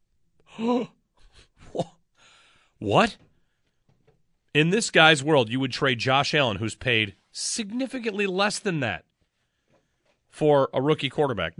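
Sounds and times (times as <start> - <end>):
man gasping theatrically: 0.4 - 2.8
softer breathy huffs: 0.4 - 3.9
speech: 0.6 - 1.0, 1.7 - 1.9, 2.8 - 3.2, 4.5 - 9.1, 10.3 - 11.5.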